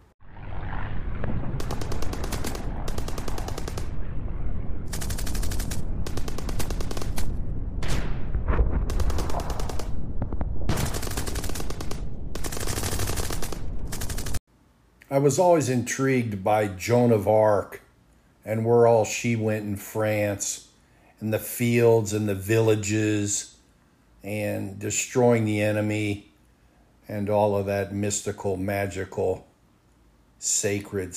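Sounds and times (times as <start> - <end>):
low rumble of World War I battlefield explosions: 0.0 - 14.4
World War I battlefield machine-gun fire in France: 0.5 - 14.4
speech: 15.2 - 17.8, 18.4 - 23.5, 24.2 - 26.3, 27.1 - 29.5, 30.4 - 31.1.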